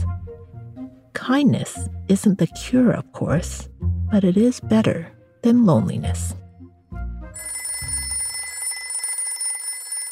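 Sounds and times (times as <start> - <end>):
speech: 1.3 - 6.4
telephone ringing with bell-like trill: 7.4 - 10.1.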